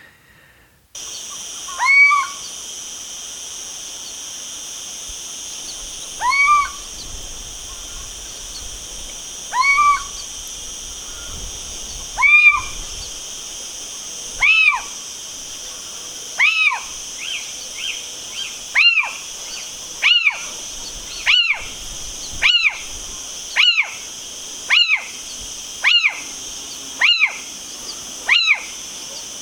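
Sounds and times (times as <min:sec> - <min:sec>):
owl calls: 0:01.0 - 0:02.6, 0:05.6 - 0:08.7, 0:09.4 - 0:12.9, 0:14.4 - 0:15.0, 0:15.7 - 0:26.4, 0:27.0 - 0:29.3
steady high-pitched hum: 0:01.0 - 0:28.2.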